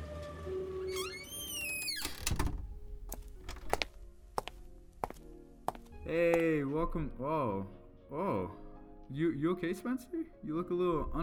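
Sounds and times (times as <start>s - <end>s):
door creaking open: 0.8s - 4.0s
speech: 6.1s - 11.2s.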